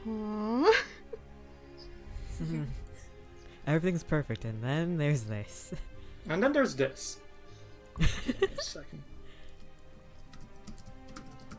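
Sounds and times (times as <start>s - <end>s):
speech: 2.4s - 2.8s, 3.6s - 7.2s, 8.0s - 9.1s
laughter: 8.0s - 8.9s
light keyboard typing: 9.5s - 11.5s.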